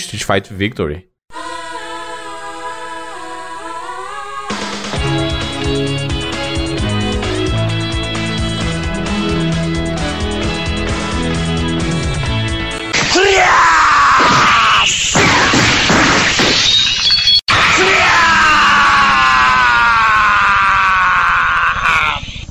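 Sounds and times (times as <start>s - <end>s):
speech: 0.0s - 1.1s
anime opening musical intro: 1.3s - 12.9s
anime special-move battle cries: 13.0s - 14.8s, 17.5s - 22.2s
crashing impacts and shattering hits: 14.2s - 17.2s.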